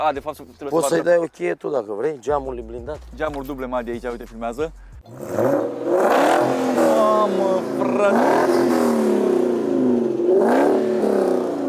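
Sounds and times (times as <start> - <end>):
speech: 0.0 - 5.9, 6.5 - 8.8
car engine revving while driving: 3.0 - 11.6.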